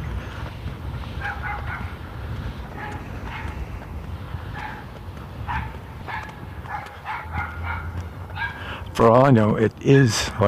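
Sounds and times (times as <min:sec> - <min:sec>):
small dog yapping: 0:01.2 - 0:01.9, 0:05.5 - 0:08.6
speech: 0:09.0 - 0:10.4.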